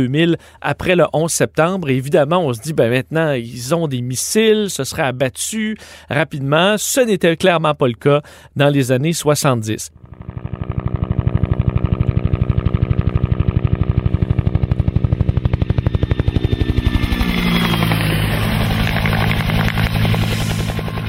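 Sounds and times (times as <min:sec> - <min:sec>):
speech: 0:00.0 - 0:10.9
Bell UH-1B Huey helicopter rotor blades chopping: 0:10.0 - 0:21.0.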